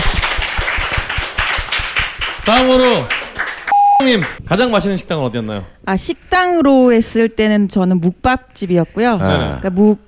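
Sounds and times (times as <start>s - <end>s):
small group clapping hands: 0.0s - 4.4s
speech: 2.4s - 3.2s, 4.0s - 10.0s.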